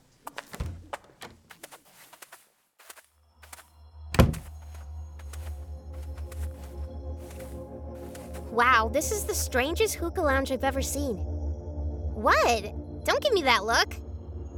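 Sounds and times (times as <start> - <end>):
door opening with clicks, rattles and a heavy thunk: 4.2 - 4.5
speech: 8.6 - 11.3, 12.2 - 14.0.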